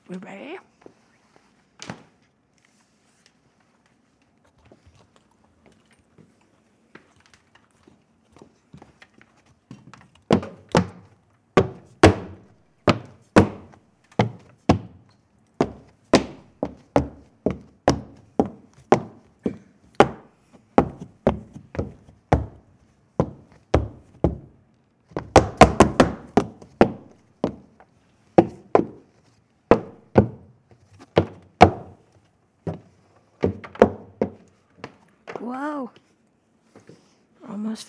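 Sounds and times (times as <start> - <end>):
speech: 0.1 - 1.0, 35.5 - 36.0
footsteps climbing a flight of stairs: 7.0 - 35.6.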